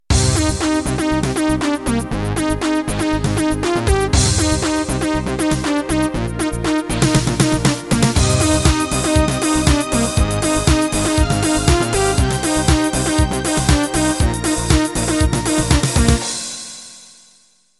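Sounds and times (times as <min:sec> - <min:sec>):
techno intro music: 0:00.1 - 0:16.4.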